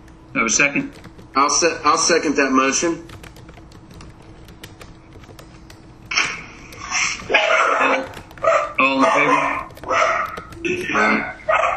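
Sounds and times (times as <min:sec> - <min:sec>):
speech: 0:00.4 - 0:03.2
dog barking and yipping during a meeting vote: 0:07.3 - 0:11.7.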